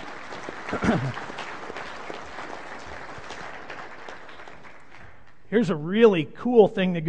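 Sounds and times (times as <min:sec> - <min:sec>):
audience applauding: 0:00.0 - 0:05.4
speech: 0:00.7 - 0:01.3, 0:05.5 - 0:07.0.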